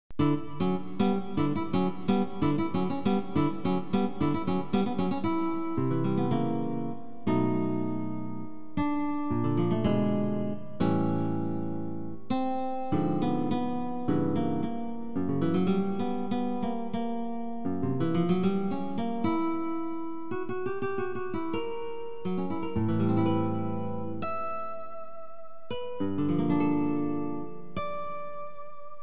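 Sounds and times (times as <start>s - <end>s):
guitar prelude: 0.1s - 29.0s.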